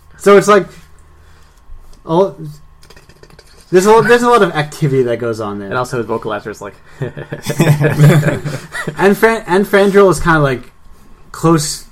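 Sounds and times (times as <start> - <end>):
speech: 0.2 - 0.8, 2.0 - 2.6, 3.7 - 10.7, 11.3 - 11.8
voice imitating insect mandibles clicking with throaty clicks and buzzing: 2.8 - 3.7
laughter: 6.9 - 9.2.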